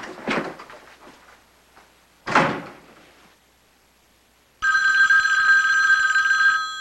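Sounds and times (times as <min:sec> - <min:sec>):
front door opening and closing: 0:00.0 - 0:01.4, 0:02.2 - 0:03.2
man striding out: 0:00.0 - 0:03.4
steady electronic telephone ring: 0:04.6 - 0:06.7.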